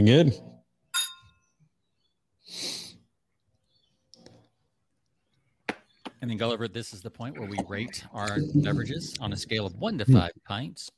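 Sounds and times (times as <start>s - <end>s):
speech: 0.0s - 0.5s, 6.2s - 10.9s
glasses clinking in a toast: 1.0s - 1.4s.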